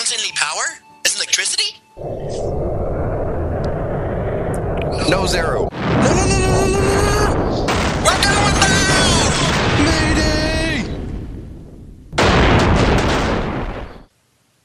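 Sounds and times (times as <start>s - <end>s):
speech: 0.1s - 2.5s, 5.1s - 7.1s
shimmering rising tones: 2.0s - 5.7s
crackling bursts of a magical elemental steel burst spell explosion: 2.0s - 14.1s.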